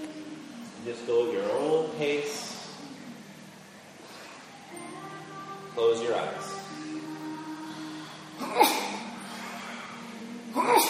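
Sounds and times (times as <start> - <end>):
speech: 0.8 - 2.6, 5.8 - 6.6
person sneezing: 8.4 - 9.0, 10.6 - 10.8.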